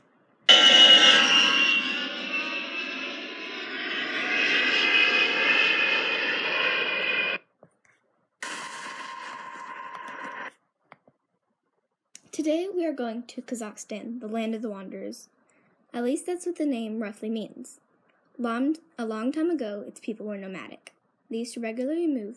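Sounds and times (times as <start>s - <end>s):
airplane engine roar: 0.5s - 7.4s, 8.4s - 10.5s
speech: 12.5s - 17.8s, 18.4s - 22.3s.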